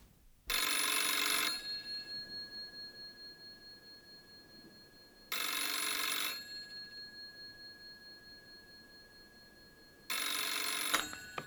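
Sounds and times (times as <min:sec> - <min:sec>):
telephone ringing in a phone booth beside a bench at a city park edge: 0:00.5 - 0:11.4.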